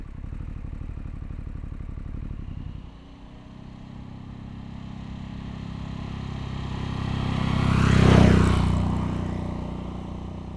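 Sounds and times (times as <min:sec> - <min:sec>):
vehicle exhaust ride-by in APEX Mode: 0:02.5 - 0:10.5.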